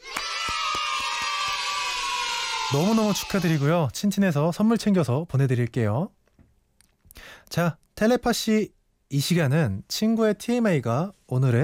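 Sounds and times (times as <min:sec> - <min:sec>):
sharp handclaps: 0:00.0 - 0:02.1
crowd applauding and cheering after prize winners are announced: 0:00.0 - 0:03.7
people whooping and shouting: 0:00.0 - 0:03.8
speech: 0:02.7 - 0:06.2, 0:07.6 - 0:11.6.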